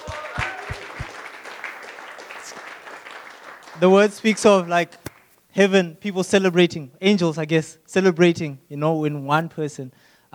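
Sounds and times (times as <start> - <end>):
crowd applauding for a speaker after a prayer: 0.0 - 5.3
speech: 3.8 - 5.0, 5.6 - 10.3.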